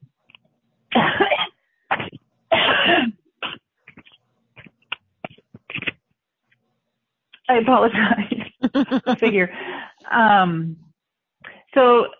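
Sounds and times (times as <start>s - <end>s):
person coughing: 1.0s - 4.0s
speech: 7.5s - 10.8s, 11.8s - 12.1s
laughter: 8.1s - 9.5s.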